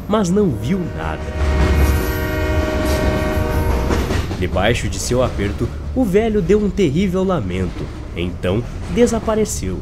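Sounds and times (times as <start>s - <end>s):
train wheels rattling on iron rails passing a station platform: 0.0s - 9.7s
speech: 0.1s - 1.5s, 4.4s - 9.7s
steam train whistle: 0.3s - 4.3s.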